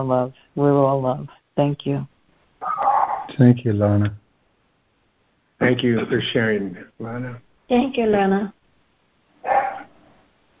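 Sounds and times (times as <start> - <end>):
speech: 0.0 - 2.1, 3.3 - 4.2, 5.6 - 8.6
Chihuahua barking: 2.6 - 3.3, 9.4 - 9.9
laughter: 5.6 - 7.4.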